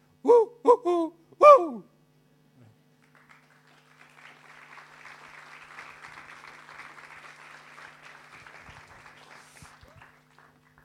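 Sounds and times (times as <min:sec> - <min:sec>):
spotted owl from the United States hooting: 0:00.3 - 0:01.9
audience applause: 0:03.0 - 0:10.8.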